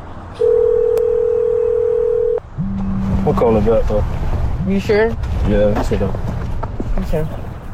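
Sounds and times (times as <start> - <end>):
steady telephone dial tone: 0.4 - 2.4
speech: 3.3 - 6.3, 7.0 - 7.4.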